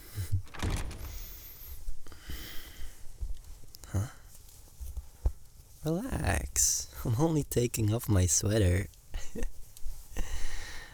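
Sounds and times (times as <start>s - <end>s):
rustling and shuffling: 0.0s - 6.1s, 8.9s - 10.2s
door swinging shut: 0.2s - 1.9s
door latch catching: 0.4s - 1.6s
speech: 5.8s - 9.5s.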